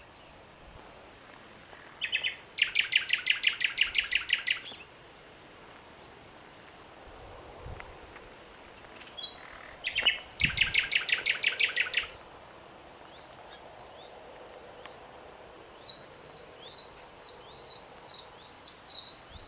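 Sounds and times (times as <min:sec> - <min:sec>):
common nightingale Luscinia megarhynchos singing: 0:00.0 - 0:00.4, 0:01.9 - 0:04.9, 0:08.2 - 0:19.4.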